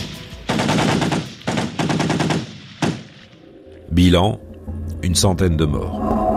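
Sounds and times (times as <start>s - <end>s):
automatic gunfire from soldiers shooting at protesters in Madagascar: 0.5s - 3.2s
speech: 4.0s - 6.2s.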